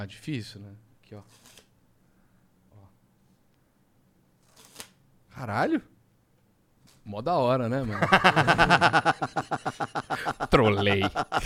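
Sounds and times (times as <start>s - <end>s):
speech: 0.0s - 1.6s, 5.4s - 5.9s, 7.1s - 9.6s, 10.6s - 11.4s
playing cards being handled: 1.2s - 1.7s, 4.4s - 5.0s
laughter: 7.8s - 11.4s.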